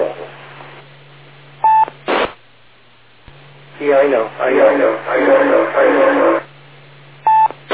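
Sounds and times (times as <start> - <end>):
low electrical hum: 0.0 - 7.7
DTMF keypad tone dialing a landline telephone: 1.6 - 1.9, 7.3 - 7.6
crackly noise burst on a phone line: 1.9 - 2.4
speech: 3.8 - 6.4.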